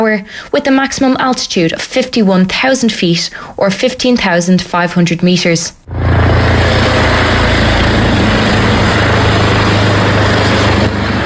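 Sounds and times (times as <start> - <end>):
speech: 0.0 - 7.1
police helicopter hovering overhead: 5.8 - 11.2.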